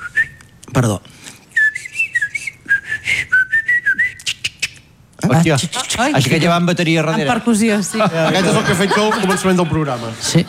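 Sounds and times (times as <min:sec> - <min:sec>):
person whistling an imitation of blackcap song: 0:00.0 - 0:00.5, 0:01.5 - 0:04.7
speech: 0:00.8 - 0:01.3, 0:05.3 - 0:10.4
laughter: 0:06.2 - 0:10.4.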